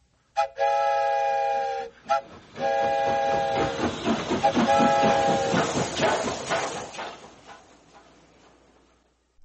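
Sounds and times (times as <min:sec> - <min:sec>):
train whistle blasts: 0:00.3 - 0:05.9
chugging train rattle: 0:01.7 - 0:09.0.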